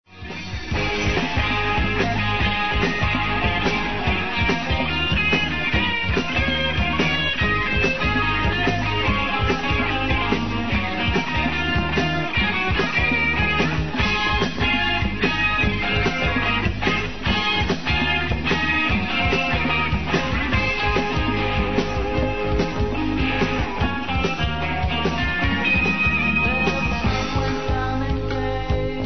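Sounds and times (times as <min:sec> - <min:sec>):
guitar solo: 0:00.7 - 0:28.9.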